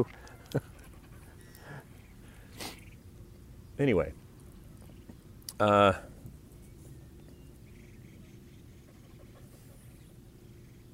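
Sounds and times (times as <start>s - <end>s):
speech: 0.0s - 0.7s, 3.8s - 4.2s, 5.6s - 6.1s
dog panting: 0.5s - 1.9s, 8.8s - 10.0s.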